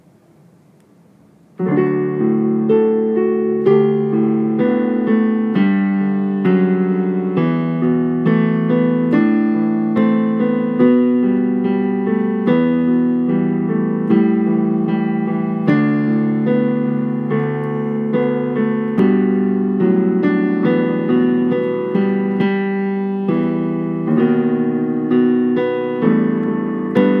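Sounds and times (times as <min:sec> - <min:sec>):
national anthem played on piano in baritone range: 0:01.6 - 0:27.1.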